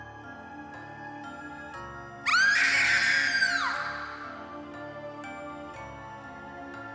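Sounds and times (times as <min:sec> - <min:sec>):
loud high-pitched scream: 0:02.3 - 0:04.4.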